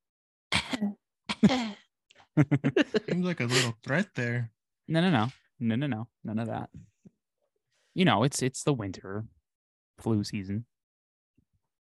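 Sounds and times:
person faking a little throaty cough: 0.5s - 1.7s
speech: 0.8s - 1.8s, 2.4s - 6.9s, 8.0s - 9.4s, 10.0s - 10.7s
laughter: 2.4s - 4.2s.

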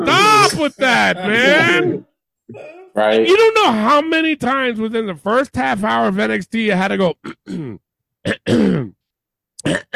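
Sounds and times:
speech: 0.0s - 9.0s, 9.6s - 9.9s
man clearing his throat: 7.2s - 9.0s, 9.6s - 9.9s.

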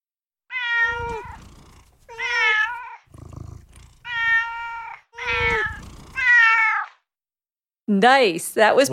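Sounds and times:
cat meowing: 0.5s - 3.1s, 4.0s - 7.0s
speech: 7.9s - 8.9s.

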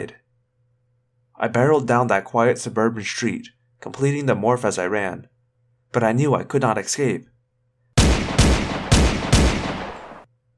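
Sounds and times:
speech: 0.0s - 0.2s, 1.4s - 5.3s, 5.9s - 7.3s
police gunfire on a quiet suburban street: 8.0s - 10.3s.

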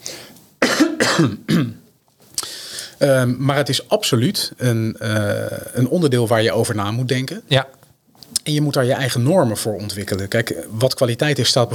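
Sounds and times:
short throat-clearing coughs: 0.6s - 1.8s
speech: 1.2s - 1.8s, 3.0s - 7.8s, 8.4s - 11.7s.

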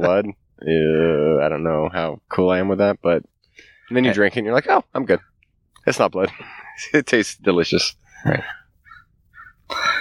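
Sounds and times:
speech: 0.0s - 8.6s
crow cawing: 8.4s - 10.0s.

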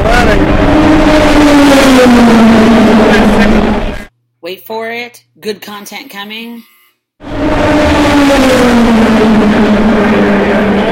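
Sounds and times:
car speeding past revving hard: 0.0s - 4.1s, 7.2s - 10.8s
road noise: 0.0s - 4.1s, 7.2s - 10.8s
speech: 4.5s - 10.8s.

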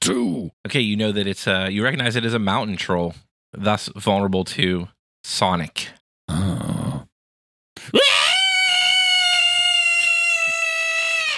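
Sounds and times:
speech: 0.0s - 6.4s
gruff vocal burst: 6.3s - 7.1s
person letting out a loud high-pitched scream: 7.8s - 11.3s.

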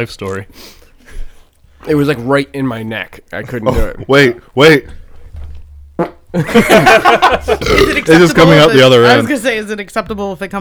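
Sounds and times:
speech: 0.0s - 1.2s, 1.8s - 5.0s, 6.0s - 10.6s
laughter: 3.4s - 4.5s, 6.0s - 9.4s
man burping deliberately: 3.5s - 4.5s, 7.2s - 9.3s.

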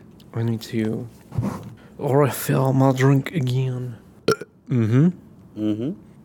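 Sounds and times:
speech: 0.3s - 4.1s, 4.7s - 6.1s
person burping: 4.3s - 4.5s.

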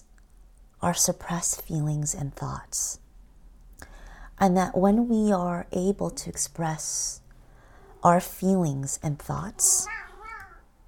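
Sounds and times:
quiet hum: 0.0s - 10.8s
speech: 0.8s - 3.0s, 4.4s - 7.2s, 8.0s - 10.0s
male pet cat meowing: 9.6s - 10.7s.

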